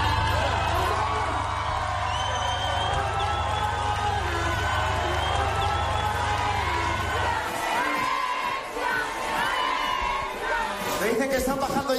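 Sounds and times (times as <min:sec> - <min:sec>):
scattered whoops and high voices: 0:00.0 - 0:08.2
large dense crowd cheering and shouting at a victory celebration: 0:00.0 - 0:11.9.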